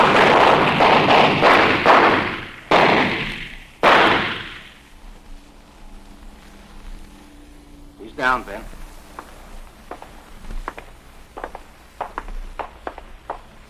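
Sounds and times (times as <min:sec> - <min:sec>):
gunshots fired at a suspect behind a car: 0:00.0 - 0:04.9, 0:09.9 - 0:13.6
speech: 0:08.3 - 0:08.7.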